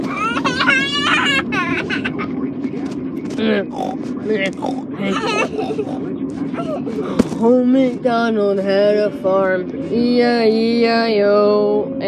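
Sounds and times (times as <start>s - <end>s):
laughter: 0.0s - 7.4s
lively sing-song vocal sounds: 0.0s - 12.0s
steady low hum: 0.0s - 12.0s
voice imitating pig oinking and grunting in a farm song: 3.3s - 6.9s
speech: 3.4s - 12.0s.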